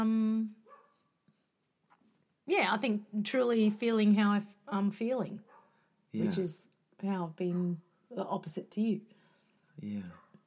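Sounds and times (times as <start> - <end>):
dog barking: 0.7 - 1.1, 5.4 - 5.8, 10.1 - 10.4
speech: 2.5 - 5.5, 6.1 - 9.2, 9.8 - 10.2.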